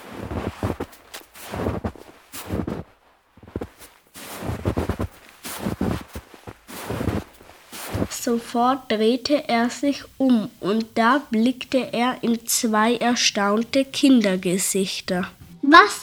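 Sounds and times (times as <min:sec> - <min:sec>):
creaking footsteps: 0:00.0 - 0:15.6
speech: 0:08.2 - 0:16.0.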